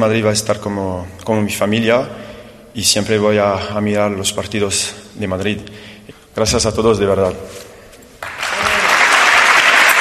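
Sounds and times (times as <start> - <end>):
speech: 0.0 - 2.2, 2.8 - 7.7
applause at a small private farewell gathering for a departing football player: 8.2 - 9.9.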